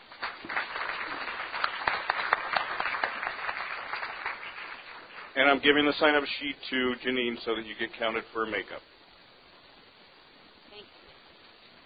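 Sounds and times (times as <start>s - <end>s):
audience applause: 0.0s - 5.7s
speech: 5.4s - 8.9s.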